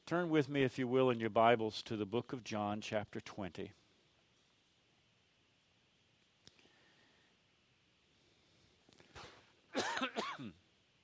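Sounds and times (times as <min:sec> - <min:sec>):
speech: 0:00.1 - 0:03.8
person coughing harshly: 0:09.7 - 0:10.6
throat clearing: 0:09.8 - 0:10.6.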